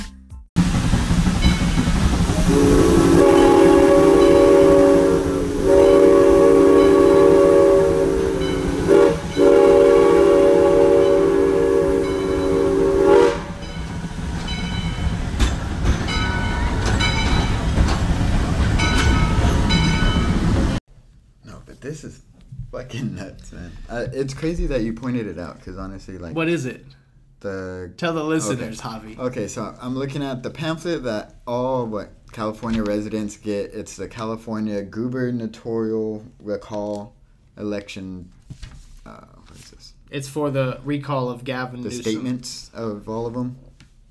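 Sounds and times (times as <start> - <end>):
train rolling in with wheels rumbling on track: 0.6 - 20.8
loud sustained train horn blaring: 2.3 - 14.0
speech: 24.2 - 43.7.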